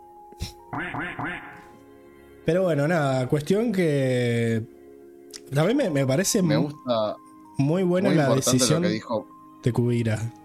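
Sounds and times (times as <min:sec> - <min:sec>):
speech: 0:00.3 - 0:01.7, 0:02.4 - 0:04.8, 0:05.4 - 0:10.4
nasal duck quacks: 0:00.7 - 0:01.7.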